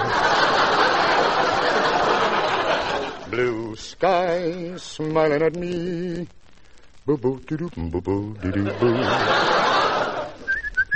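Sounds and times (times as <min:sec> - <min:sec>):
laughter: 0:00.0 - 0:03.4, 0:08.4 - 0:10.5
speech: 0:03.4 - 0:06.4, 0:07.1 - 0:09.9
person whistling a tune: 0:10.5 - 0:10.9.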